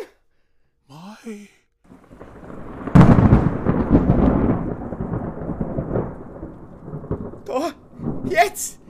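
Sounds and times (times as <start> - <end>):
faint patter of rain: 1.9 - 8.8
loud crack of thunder rolling and rumbling: 1.9 - 8.8.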